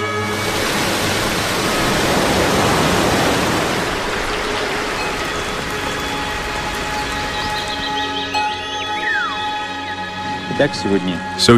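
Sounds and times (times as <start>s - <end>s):
rain falling: 0.2s - 8.6s
faint chirping calls: 4.2s - 10.1s
speech: 10.6s - 11.5s.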